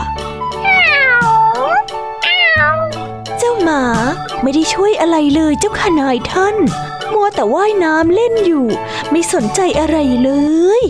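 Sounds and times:
cat meowing: 0:00.6 - 0:03.1
speech: 0:03.7 - 0:10.8.

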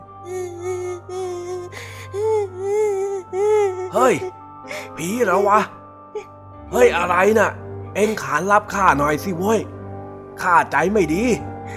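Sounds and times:
child crying behind a house's front door: 0:00.2 - 0:05.6
speech: 0:03.9 - 0:04.4, 0:05.0 - 0:05.8, 0:06.7 - 0:09.8, 0:10.4 - 0:11.7.

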